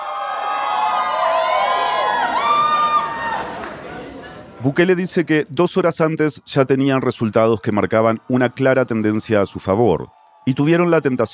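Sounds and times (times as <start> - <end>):
large audience cheering and shouting at a campaign event: 0.0 - 4.3, 6.8 - 11.3
speech: 4.6 - 11.3.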